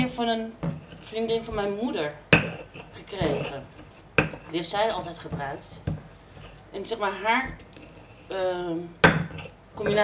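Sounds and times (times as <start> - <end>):
heavy stone mortar set down or bumped: 0.0 - 6.2, 9.0 - 10.0
speech: 0.2 - 3.9, 4.5 - 5.9, 6.7 - 7.7, 8.3 - 9.2, 9.8 - 10.0.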